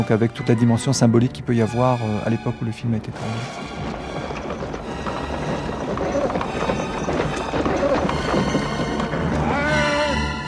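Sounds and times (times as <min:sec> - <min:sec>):
speech: 0:00.0 - 0:03.8
dense rumble: 0:02.5 - 0:09.7
clip-clop of hooves from a horse-drawn carriage pulled by black horses: 0:03.2 - 0:10.2.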